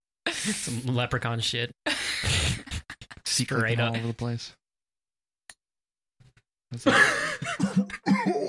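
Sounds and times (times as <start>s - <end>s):
speech: 0.5s - 2.7s, 3.4s - 4.6s, 6.7s - 8.4s
person coughing after inhaling a vape: 6.9s - 8.4s.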